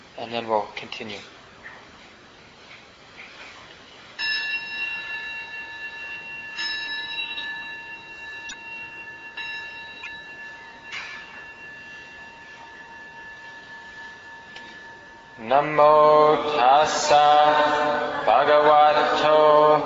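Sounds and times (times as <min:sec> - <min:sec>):
speech: 0:00.2 - 0:01.4, 0:15.5 - 0:19.8
resonant bell struck: 0:04.2 - 0:19.8.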